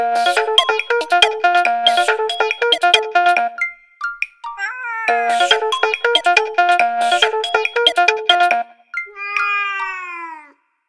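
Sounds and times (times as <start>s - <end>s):
bright plinking musical notes: 0.0s - 10.0s
kitten meowing: 9.1s - 10.6s.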